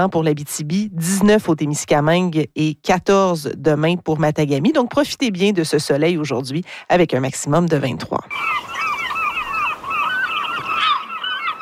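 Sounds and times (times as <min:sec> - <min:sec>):
speech: 0:00.0 - 0:08.9
flock of gulls calling: 0:08.3 - 0:11.6.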